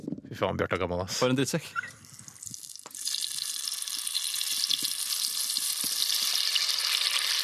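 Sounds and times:
speech: 0.4 - 2.0
Brussels sprouts sizzling in hot fat in a hot pot: 2.3 - 7.4.

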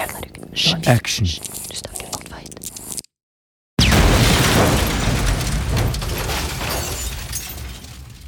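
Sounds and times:
speech: 0.6 - 2.0
loud explosion-like blast with shattering crashing rumble and crackle: 3.8 - 8.2.

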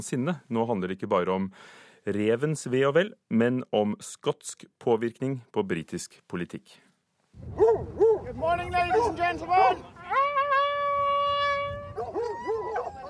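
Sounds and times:
speech: 0.0 - 6.8, 7.4 - 10.4
large pack of fox hunting hounds baying in the English countryside: 7.5 - 9.3, 11.9 - 13.0
fox hunting hound howling in the English countryside: 8.9 - 13.0.

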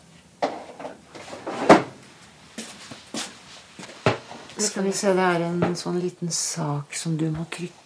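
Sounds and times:
wooden knocks and scrapes from rummaging in a drawer: 0.4 - 2.0
drawer being opened to fetch a medal: 0.5 - 2.0
speech: 4.6 - 7.8.

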